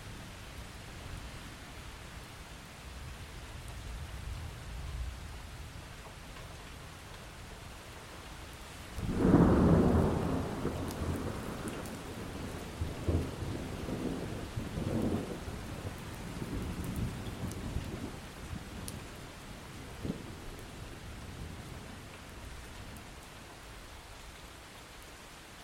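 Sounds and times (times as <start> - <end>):
steady rain: 0.0 - 25.6
thunder cracking and rumbling: 9.0 - 19.1.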